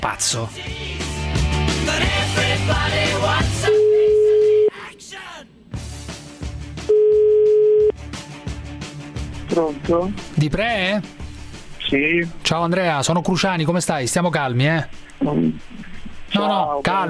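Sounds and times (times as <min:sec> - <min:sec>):
speech: 0:00.0 - 0:01.0, 0:09.6 - 0:11.2, 0:11.9 - 0:15.7, 0:16.4 - 0:17.0
music: 0:00.0 - 0:04.9, 0:05.7 - 0:17.0
ringback tone on an outgoing telephone call: 0:03.7 - 0:04.7, 0:06.9 - 0:07.9.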